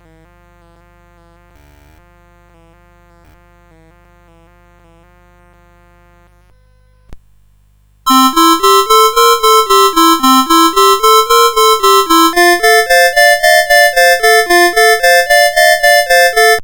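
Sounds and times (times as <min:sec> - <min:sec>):
boogie music on CSG8580R5 sound chip: 0:08.1 - 0:16.6.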